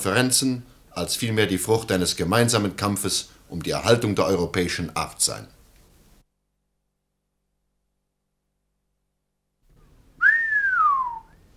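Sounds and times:
speech: 0:00.0 - 0:05.6
man whistling to himself: 0:10.2 - 0:11.5.

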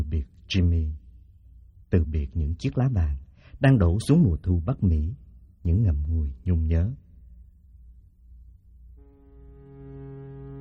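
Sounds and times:
speech: 0:00.2 - 0:01.0, 0:01.9 - 0:07.0
ship's horn sounding as the ship leaves port: 0:09.0 - 0:10.6.

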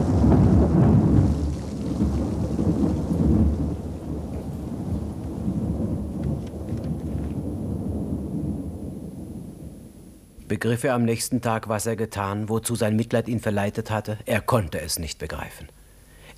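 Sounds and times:
thunder crashing and rolling after lightning on a stormy night: 0:00.0 - 0:10.2
rain hissing: 0:00.0 - 0:10.5
speech: 0:10.5 - 0:15.8.

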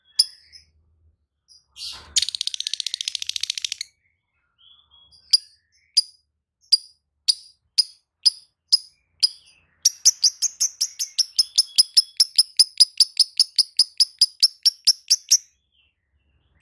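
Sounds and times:
lovebird chatter and chirps: 0:01.5 - 0:03.9, 0:05.1 - 0:15.5.

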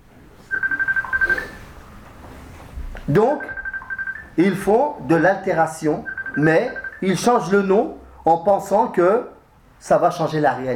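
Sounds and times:
mobile phone ringing: 0:00.5 - 0:01.7, 0:03.2 - 0:05.0, 0:05.9 - 0:07.5
speech: 0:03.1 - 0:03.6, 0:04.4 - 0:10.7.

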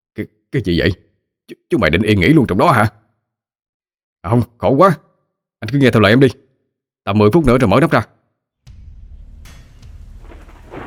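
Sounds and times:
speech: 0:00.2 - 0:03.0, 0:04.2 - 0:06.4, 0:07.0 - 0:08.2
thunder cracks and rumbling: 0:08.7 - 0:10.8
heavy rain pouring down: 0:09.9 - 0:10.8.

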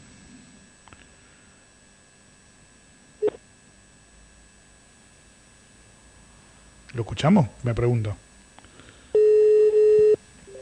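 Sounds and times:
speech: 0:07.0 - 0:08.2
telephone line tone on a raw call: 0:09.2 - 0:10.6.

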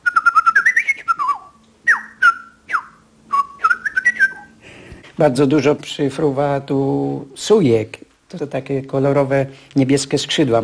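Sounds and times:
person whistling an imitation of blackbird song: 0:00.0 - 0:04.6
speech: 0:05.2 - 0:10.6.

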